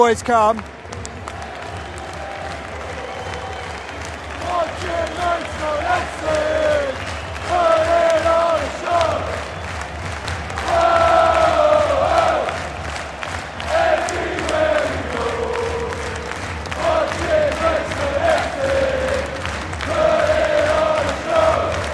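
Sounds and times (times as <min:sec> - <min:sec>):
football stadium crowd cheering and roaring: 0:00.0 - 0:21.9.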